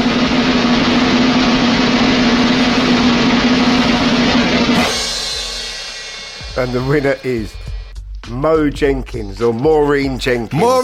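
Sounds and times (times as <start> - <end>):
bright cymbal crash: 0.0 - 7.9
drum roll: 0.0 - 10.8
speech: 6.6 - 7.7, 8.3 - 10.8.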